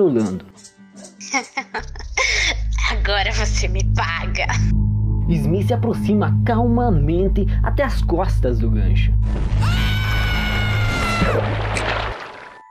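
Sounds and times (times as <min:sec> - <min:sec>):
speech: 0:00.0 - 0:00.7, 0:01.3 - 0:01.8, 0:03.1 - 0:09.4, 0:11.2 - 0:11.9
laughter: 0:01.2 - 0:03.6
loud scream: 0:09.5 - 0:11.4.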